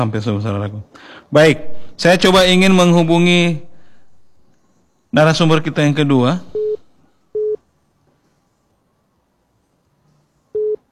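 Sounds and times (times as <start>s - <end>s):
speech: 0.0s - 3.7s, 5.1s - 6.6s
faint hum: 0.0s - 10.9s
telephone busy tone beeps: 10.6s - 10.8s.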